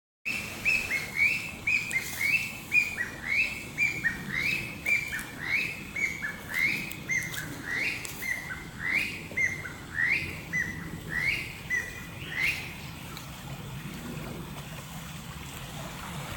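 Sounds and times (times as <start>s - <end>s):
Chinese bamboo partridge calling: 0.3s - 12.8s.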